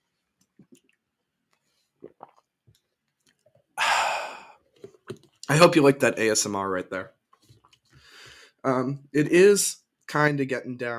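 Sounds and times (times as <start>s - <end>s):
person sipping water with soft gulps and wet swallowing clicks: 0.4s - 5.5s
speech: 5.5s - 7.2s, 8.6s - 10.9s.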